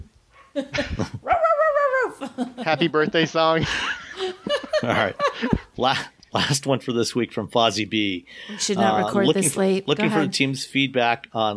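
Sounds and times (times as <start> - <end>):
speech: 0.6 - 1.3, 2.2 - 11.5
laughter: 0.6 - 6.6, 8.6 - 10.4
dog barking and whining: 1.2 - 2.2.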